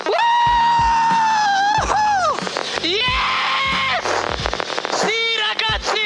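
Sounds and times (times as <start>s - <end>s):
F1 driver screaming ecstatically over crackly team radio: 0.0s - 4.2s
other people shouting: 0.0s - 5.9s.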